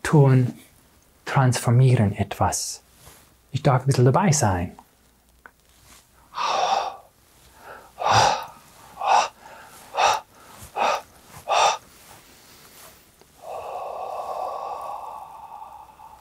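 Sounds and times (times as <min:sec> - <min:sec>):
speech: 0:00.1 - 0:00.6, 0:01.3 - 0:02.8, 0:03.5 - 0:04.8
person breathing in and out: 0:06.2 - 0:16.2.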